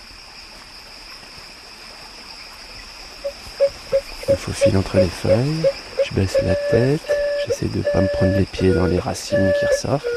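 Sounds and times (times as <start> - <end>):
constant high-pitched insect drone: 0.0 - 10.1
small stream of running water in woods babbling: 0.0 - 10.1
brief tone: 3.6 - 10.1
speech: 4.3 - 10.1.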